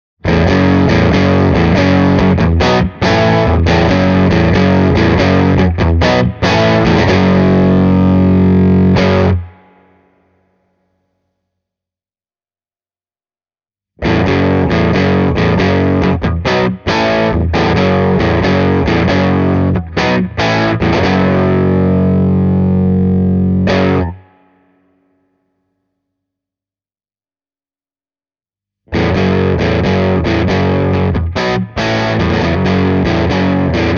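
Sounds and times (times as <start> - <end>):
Epiphone Les Paul electric guitar through power amp at low volume: 0.2 - 10.2, 14.0 - 24.6, 28.9 - 33.9.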